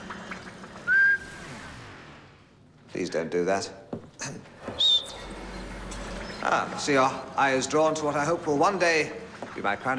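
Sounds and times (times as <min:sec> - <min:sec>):
person whistling a short note to switch on a bottled electric light: 0:00.9 - 0:01.3
speech: 0:03.0 - 0:04.8, 0:06.4 - 0:09.9.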